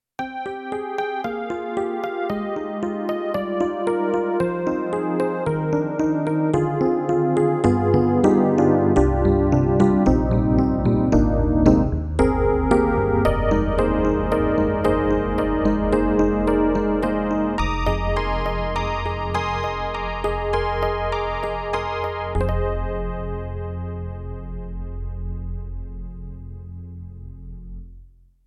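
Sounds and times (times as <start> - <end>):
synthesizer module electric piano with chorus: 0.2 - 27.3.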